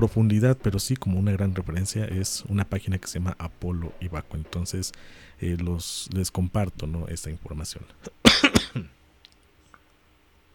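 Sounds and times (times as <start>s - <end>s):
speech: 0.0s - 9.0s
person coughing: 8.1s - 8.9s.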